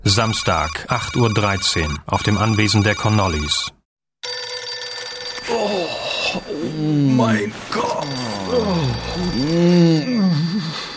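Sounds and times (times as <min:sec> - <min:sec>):
speech: 0:00.1 - 0:03.8, 0:05.6 - 0:10.8
telephone ringing with a high metallic bell tone: 0:00.1 - 0:10.9.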